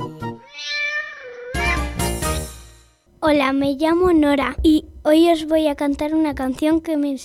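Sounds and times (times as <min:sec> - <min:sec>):
cat meowing: 0:00.4 - 0:02.0
speech: 0:03.3 - 0:07.2.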